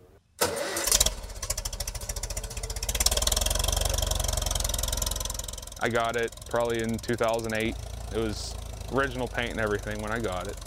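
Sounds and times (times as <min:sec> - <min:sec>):
rebuilt 1954 Farmall Super MTA tractor engine starting and idling in western Pennsylvania: 0:00.3 - 0:10.6
speech: 0:05.8 - 0:10.6.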